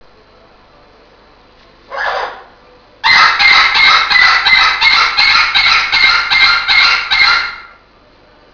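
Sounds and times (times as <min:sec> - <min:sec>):
parrots squawking: 0:01.9 - 0:07.8.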